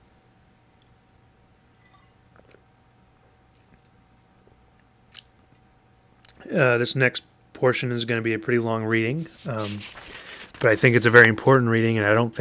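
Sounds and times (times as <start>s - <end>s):
low room hum: 0.0s - 12.4s
glass clinking: 1.7s - 2.2s
person sipping water: 1.8s - 5.4s
speech: 6.4s - 12.4s.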